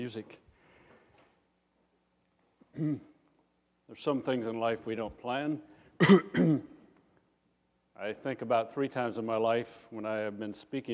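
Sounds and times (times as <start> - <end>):
speech: 0.0 - 0.5, 2.8 - 3.1, 3.9 - 6.7, 8.0 - 10.9
person clearing throat with a slight voiced rasp: 2.7 - 3.2, 6.0 - 6.8.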